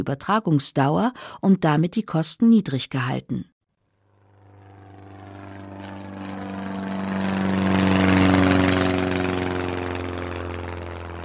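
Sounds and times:
speech: 0.0s - 3.5s
propeller airplane engine droning in flight: 3.9s - 11.2s.

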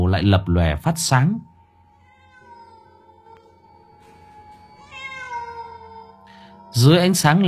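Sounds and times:
steady tonal background: 0.0s - 7.4s
speech: 0.1s - 1.5s, 6.8s - 7.4s
black cat meowing: 1.9s - 4.0s, 4.6s - 6.5s.

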